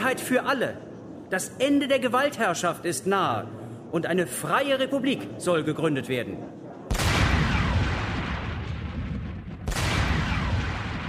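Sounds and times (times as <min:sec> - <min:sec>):
speech: 0:00.0 - 0:06.7
heavy cannon shots fired in salute: 0:06.8 - 0:11.0.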